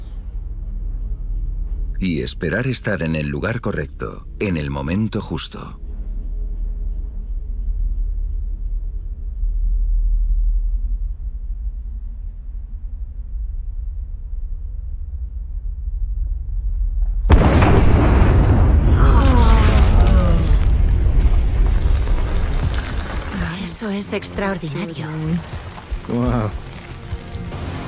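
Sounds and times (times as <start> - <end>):
Volcán de Fuego crater low rumble: 0.0 - 27.8
speech: 2.0 - 5.8, 24.0 - 26.7
Volcán de Fuego crater bursting in a volcanic eruption blast: 16.8 - 23.8.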